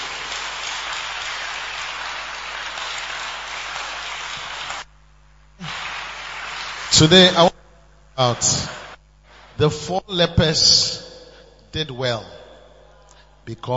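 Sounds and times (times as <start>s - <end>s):
large crowd clapping: 0.0s - 5.0s, 5.6s - 7.6s, 8.2s - 9.6s
speech: 7.0s - 7.6s, 8.2s - 8.8s, 9.6s - 11.0s, 11.7s - 12.4s, 13.5s - 13.7s.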